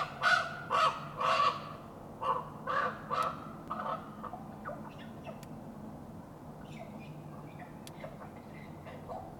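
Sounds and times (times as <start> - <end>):
common raven giving coarse croaking caws: 0.0 - 4.4.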